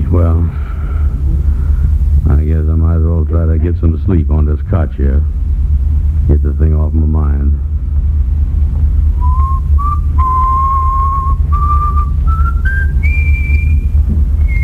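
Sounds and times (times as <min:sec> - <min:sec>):
steady low rumble: 0:00.0 - 0:14.6
speech: 0:00.1 - 0:00.8, 0:03.3 - 0:05.4, 0:06.3 - 0:07.7
man whistling a slow tune: 0:09.2 - 0:14.6.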